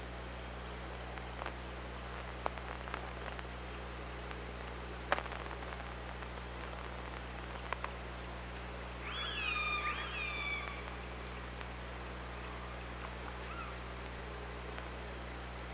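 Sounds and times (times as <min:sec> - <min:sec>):
steady low electrical hum and hiss: 0:00.0 - 0:15.7
orca tonal calls recorded by hydrophone: 0:09.0 - 0:11.4, 0:12.4 - 0:13.9.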